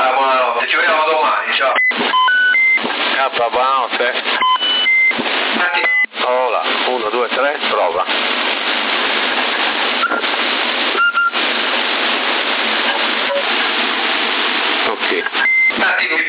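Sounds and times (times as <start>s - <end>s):
static hiss of a CB radio transmission on 27.075 MHz: 0.0s - 16.2s
short electronic beeps on a CB radio transmission: 1.7s - 2.8s, 4.4s - 5.2s, 5.8s - 6.1s, 10.0s - 10.2s, 11.0s - 11.4s, 12.9s - 13.5s, 15.3s - 15.8s.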